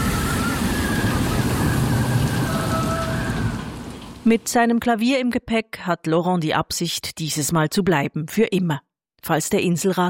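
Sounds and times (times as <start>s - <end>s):
faint whistling tone: 0.0s - 3.7s
stormy sea roaring: 0.0s - 4.3s
speech: 4.3s - 10.0s.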